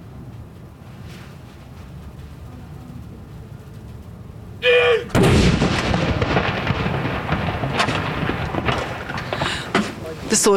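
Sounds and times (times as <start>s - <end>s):
long rumbling echo of cannon shot: 4.9s - 10.2s
ceremonial cannon salute shot booming: 5.1s - 10.0s.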